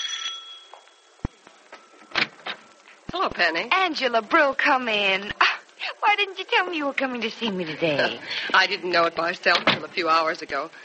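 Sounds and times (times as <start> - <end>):
doorbell ringing: 0.0 - 1.2
speech: 3.2 - 5.4, 6.0 - 10.8.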